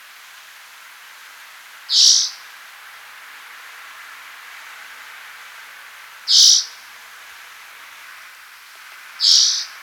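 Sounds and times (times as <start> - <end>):
spotted forktail giving piercing high squeaky calls: 9.2 - 9.7.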